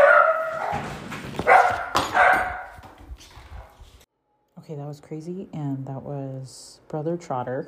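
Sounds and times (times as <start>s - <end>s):
dog barking and yelping: 0.0s - 2.8s
speech: 4.7s - 7.6s.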